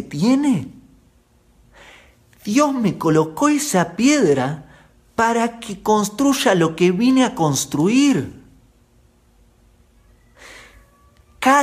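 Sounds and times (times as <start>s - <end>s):
speech: 0.0s - 0.8s, 2.4s - 8.4s, 11.4s - 11.6s
low steady hum: 0.0s - 11.6s
faint cat meow: 9.8s - 11.6s.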